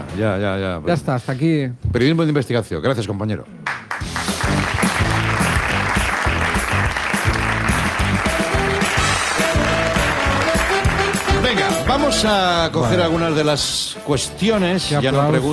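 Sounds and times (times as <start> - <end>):
speech: 0.2 - 3.8, 12.2 - 15.5
weak audience applause: 3.6 - 12.4
rhythmic musical backing: 4.0 - 15.5.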